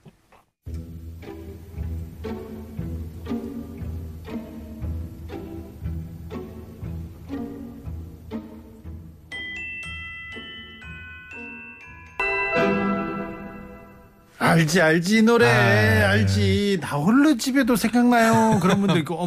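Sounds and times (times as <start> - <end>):
plucked pizzicato strings in a dance rhythm: 0.7 - 9.1
bell-like celesta melody: 9.3 - 14.3
speech: 14.5 - 19.2
laughter: 18.2 - 19.2.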